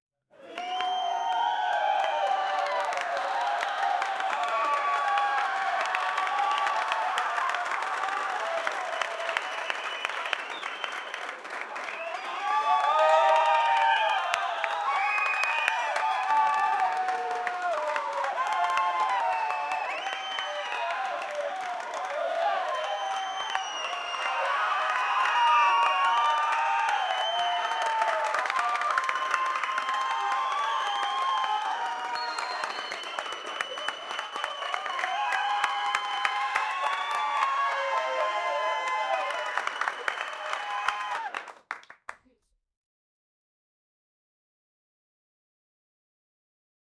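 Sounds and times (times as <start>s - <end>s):
medium sitcom studio audience crowd: 0.3s - 42.1s.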